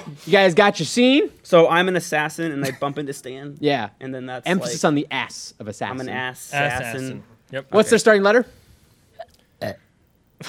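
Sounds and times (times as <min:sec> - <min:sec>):
speech: 0:00.1 - 0:08.6, 0:09.6 - 0:09.8
burp: 0:09.6 - 0:09.9.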